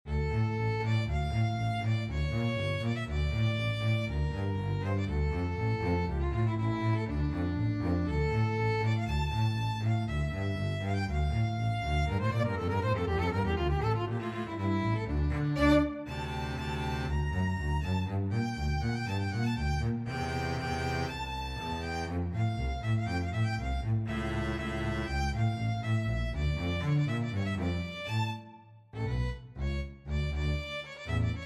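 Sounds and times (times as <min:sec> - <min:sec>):
bass: 0:00.0 - 0:31.4
violin: 0:00.0 - 0:31.4.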